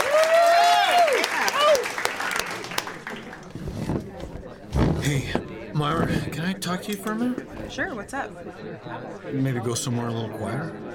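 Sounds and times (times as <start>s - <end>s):
cheers and whoops: 0.0s - 2.0s
crowd clapping at an evening event: 0.0s - 3.5s
speech: 5.8s - 10.9s.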